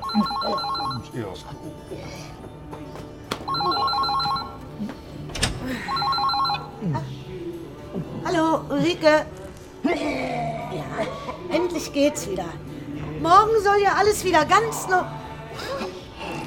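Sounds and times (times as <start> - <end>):
telephone ringing with a warbling electronic tone on an outgoing call: 0.0 - 1.1, 3.5 - 4.6, 5.8 - 6.8
speech: 0.1 - 3.0, 8.3 - 12.6, 13.2 - 15.8.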